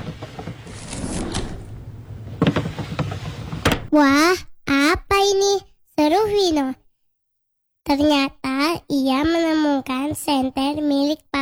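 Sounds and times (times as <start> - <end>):
wooden desk drawers scraping open: 0.0 - 4.0
speech: 3.9 - 6.8, 7.9 - 11.3.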